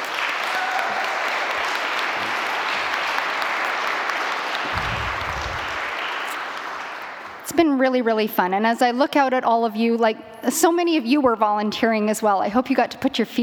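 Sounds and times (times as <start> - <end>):
large audience applauding event organizers and committee chairs: 0.0 - 7.4
low rumble: 4.7 - 5.8
speech: 7.6 - 13.4.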